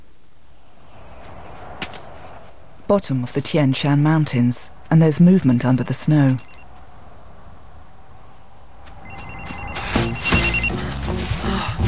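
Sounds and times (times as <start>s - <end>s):
speech: 2.9s - 6.5s
mobile phone ringing: 5.5s - 6.7s, 9.0s - 10.9s.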